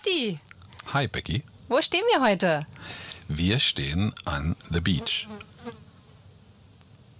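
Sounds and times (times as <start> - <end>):
speech: 0.1 - 5.8
fly buzzing in a low steady drone: 4.9 - 6.2.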